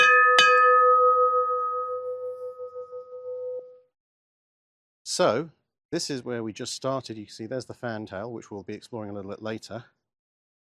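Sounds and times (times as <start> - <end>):
ship's bell struck: 0.0 - 3.8
speech: 5.1 - 10.0.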